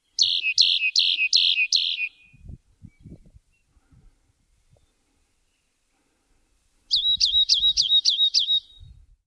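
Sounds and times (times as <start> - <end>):
Rock Wren singing: 0.0 - 3.8, 6.9 - 9.0.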